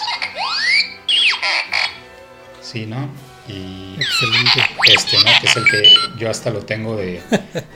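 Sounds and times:
toy robot electronic chirps and warbling whistles: 0:00.0 - 0:02.0, 0:04.0 - 0:06.2
speech: 0:02.7 - 0:07.7.

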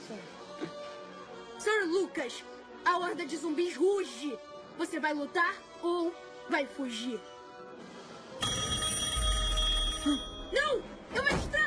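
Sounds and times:
speech: 0:00.1 - 0:00.8, 0:01.8 - 0:07.9, 0:10.0 - 0:11.4
telephone bell ringing: 0:08.4 - 0:11.0.

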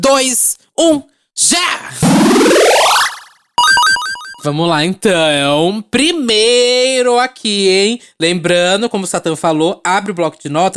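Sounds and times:
speech: 0:00.0 - 0:03.2, 0:04.4 - 0:10.7
rising synthetic game-start tone: 0:02.1 - 0:04.5
cascade of electronic game-start chime notes: 0:02.6 - 0:04.5.

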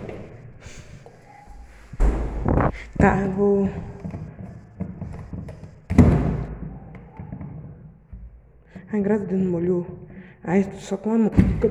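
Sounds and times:
rustling and scraping: 0:00.0 - 0:08.8
quiet noise: 0:00.0 - 0:11.7
door swinging shut with a heavy thud: 0:01.5 - 0:02.8
speech: 0:03.0 - 0:03.9, 0:09.0 - 0:11.7.

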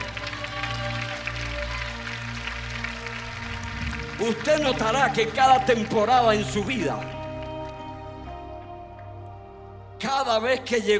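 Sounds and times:
crowd applauding: 0:00.0 - 0:09.3
speech: 0:04.2 - 0:07.2, 0:10.3 - 0:10.9.

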